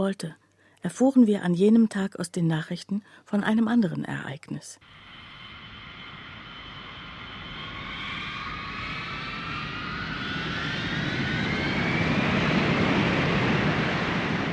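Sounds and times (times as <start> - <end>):
speech: 0.0 - 5.1
Mirage fighter jets taking off from a military base: 4.8 - 14.5.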